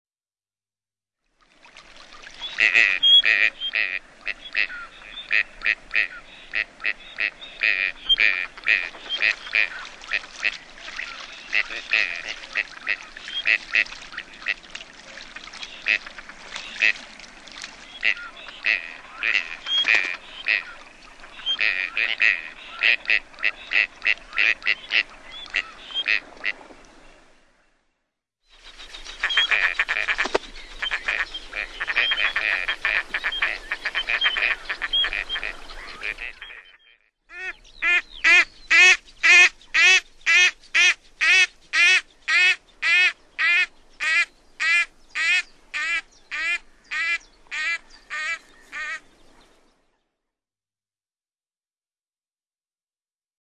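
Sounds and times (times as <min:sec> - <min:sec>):
gadwall duck calling: 0:02.4 - 0:14.6, 0:17.9 - 0:20.8, 0:21.4 - 0:26.2, 0:29.2 - 0:49.0.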